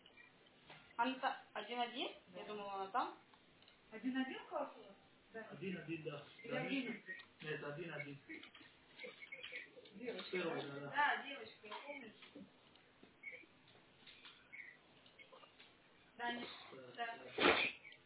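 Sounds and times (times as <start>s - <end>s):
speech: 1.0s - 3.3s, 3.9s - 9.2s, 10.0s - 12.6s, 16.2s - 17.8s
young girl sneezing: 17.4s - 17.8s.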